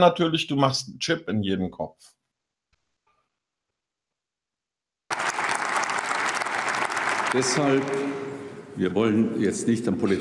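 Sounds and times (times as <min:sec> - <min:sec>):
speech: 0:00.0 - 0:02.2, 0:07.3 - 0:10.2
audience applauding a speech: 0:05.1 - 0:08.3.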